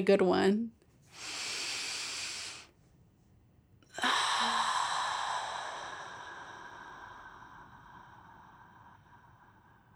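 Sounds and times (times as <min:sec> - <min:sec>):
deep breath taken during a breathing exercise: 0:01.1 - 0:02.8, 0:03.9 - 0:09.9.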